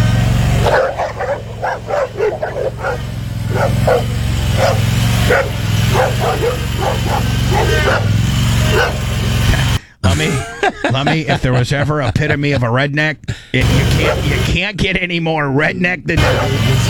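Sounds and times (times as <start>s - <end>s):
several dogs barking and yipping: 0.0s - 9.8s, 13.6s - 14.5s, 16.2s - 16.8s
steady low engine rumble: 0.0s - 10.2s, 13.6s - 14.6s, 16.2s - 16.8s
laughter: 0.7s - 14.6s, 16.2s - 16.8s
speech: 11.0s - 16.8s.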